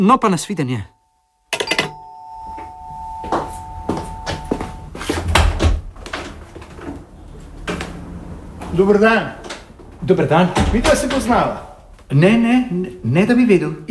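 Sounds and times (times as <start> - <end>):
speech: 0.0 - 1.0, 8.8 - 9.4, 10.0 - 13.9
doorbell ringing with a sustained electronic tone: 0.9 - 5.0
door opening and closing: 1.5 - 12.4
shuffling: 2.8 - 13.9.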